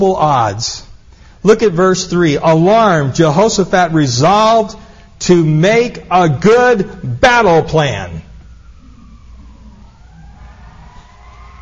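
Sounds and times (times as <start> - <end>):
speech: 0.0 - 8.3
emergency vehicle siren wailing: 7.9 - 11.6.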